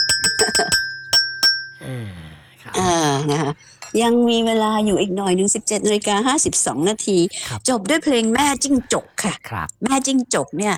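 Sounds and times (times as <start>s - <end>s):
small bell ringing: 0.0s - 1.8s
speech: 2.6s - 10.7s.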